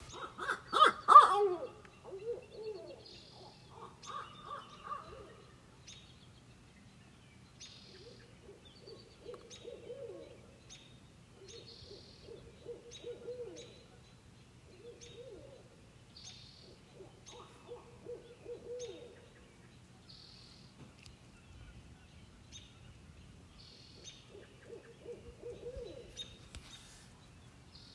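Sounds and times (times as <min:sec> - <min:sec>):
owl calling in the morning: 0:00.0 - 0:05.5, 0:07.8 - 0:10.5, 0:11.4 - 0:14.0, 0:14.7 - 0:19.4, 0:24.0 - 0:26.9.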